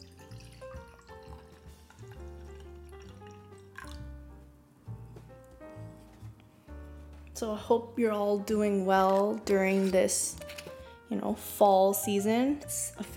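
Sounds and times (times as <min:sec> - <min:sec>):
wine pouring into a glass: 0:00.0 - 0:04.1
speech: 0:07.4 - 0:10.5, 0:11.1 - 0:13.1.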